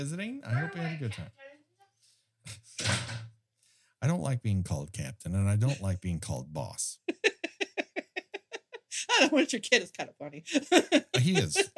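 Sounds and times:
speech: 0.0 - 1.5, 4.0 - 7.2, 9.0 - 11.7
door swinging and closing with a rattling thud: 2.8 - 3.3
laughter: 5.6 - 6.1, 7.1 - 9.0, 10.5 - 11.7.

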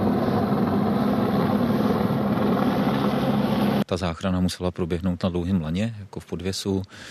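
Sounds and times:
rescue helicopter rotor noise in Nepal evacuating an ailing Sherpa: 0.0 - 3.8
speech: 3.9 - 7.0.

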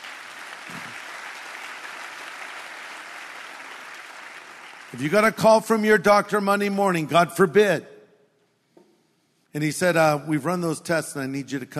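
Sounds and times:
audience applauding: 0.0 - 5.4
speech: 4.9 - 7.9, 9.5 - 11.7.

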